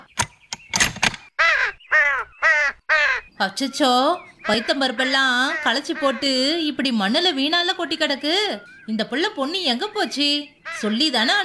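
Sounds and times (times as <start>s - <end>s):
crow cawing: 1.4s - 9.6s, 10.5s - 11.3s
speech: 3.4s - 11.4s.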